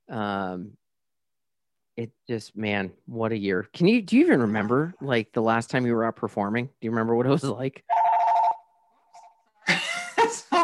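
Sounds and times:
speech: 2.0s - 8.0s
buzzy electronic phone ring: 7.9s - 9.3s
laughter: 9.6s - 10.6s.

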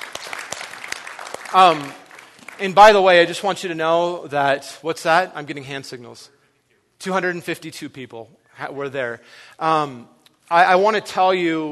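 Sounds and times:
church congregation applauding: 0.0s - 3.5s
speech: 1.5s - 2.0s, 2.6s - 6.4s, 7.0s - 11.7s.

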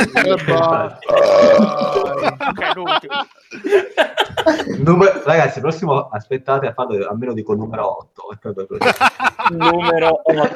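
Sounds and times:
laughter: 0.0s - 4.9s, 8.8s - 10.5s
speech: 0.0s - 10.5s
loud drawn-out burp and shorter belching bursts: 0.5s - 2.4s.

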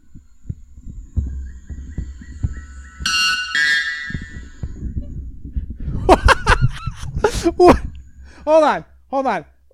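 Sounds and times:
low thumping noise: 0.0s - 9.7s
white bellbird screaming call: 1.2s - 4.7s
laughter: 6.0s - 7.9s
speech: 7.5s - 7.8s, 8.5s - 9.7s.

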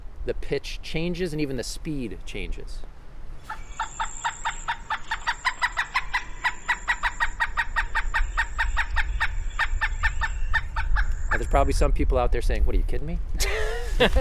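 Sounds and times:
faint noise: 0.0s - 14.2s
speech: 0.2s - 2.9s, 11.5s - 13.3s, 14.0s - 14.2s
pileated woodpecker calling wuk-wuk-wuk: 3.5s - 11.5s
laughter: 13.4s - 14.2s.

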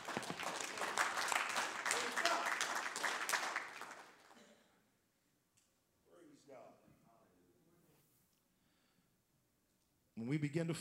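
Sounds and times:
congregation clapping hands in applause: 0.0s - 4.4s
speech: 10.3s - 10.7s.

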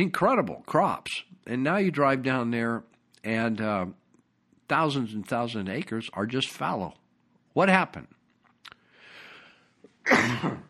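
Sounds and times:
speech: 0.0s - 4.0s, 4.7s - 7.0s, 7.6s - 8.2s, 10.1s - 10.6s
faint breathing: 8.8s - 9.9s
person coughing: 10.0s - 10.6s.

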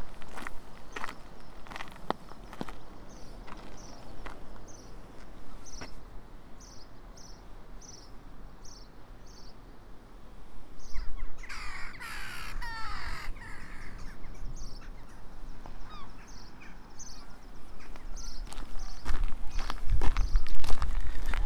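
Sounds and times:
footsteps crunching along an outdoor coastal path: 0.0s - 6.0s, 17.3s - 21.4s
steady outdoor hiss: 0.0s - 20.7s
red-billed chough giving harsh ringing calls: 11.4s - 14.3s.

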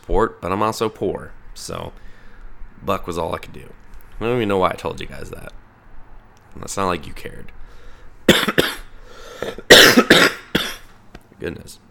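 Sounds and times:
speech: 0.1s - 2.1s, 2.8s - 5.6s, 6.5s - 8.8s, 9.4s - 10.3s, 11.4s - 11.8s
person coughing: 8.3s - 10.9s
throat clearing: 8.3s - 10.9s.

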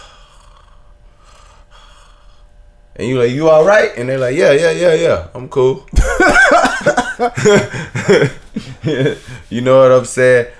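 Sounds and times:
person imitating shallow gasping breaths: 0.0s - 2.5s
speech: 3.0s - 10.5s
laughter: 6.0s - 9.3s.

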